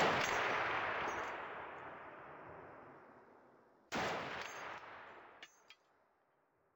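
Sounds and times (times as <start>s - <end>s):
heavy gunshot blasts with long tails: 0.0s - 2.8s, 3.9s - 5.4s.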